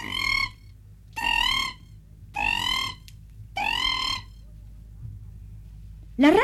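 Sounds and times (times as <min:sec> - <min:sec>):
cricket frog dry high-pitched croaking: 0:00.0 - 0:04.5
faint low hum: 0:00.0 - 0:06.4.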